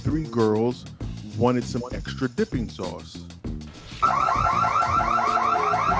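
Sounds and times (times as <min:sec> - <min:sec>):
speech: 0:00.1 - 0:03.4
piercing electronic alarm in a French fry restaurant: 0:04.0 - 0:05.9.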